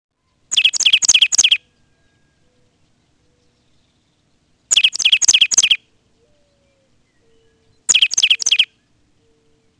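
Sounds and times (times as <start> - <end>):
plain titmouse singing fast repeated two-part notes: 0.5 - 1.6, 4.7 - 5.8, 7.3 - 8.8.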